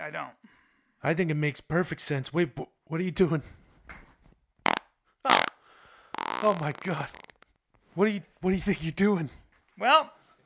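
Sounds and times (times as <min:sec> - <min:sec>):
speech: 0:00.1 - 0:03.6, 0:06.4 - 0:07.2, 0:08.0 - 0:10.2
fart noises: 0:04.6 - 0:07.6.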